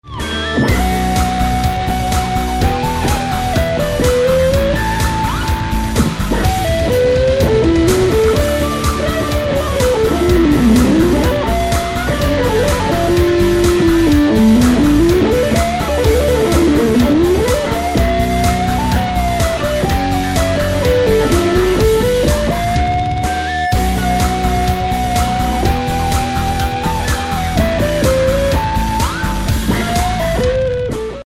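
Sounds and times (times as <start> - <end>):
six-string electric guitar with distortion: 0.0 - 31.2.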